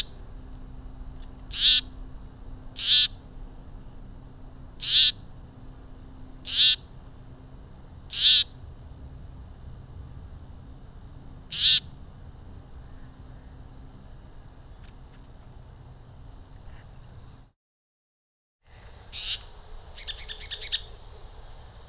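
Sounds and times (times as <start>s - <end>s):
Leaden flycatcher Myiagra rubecula giving harsh buzzy rasping calls: 0.0s - 8.6s, 11.5s - 11.9s, 19.1s - 21.2s.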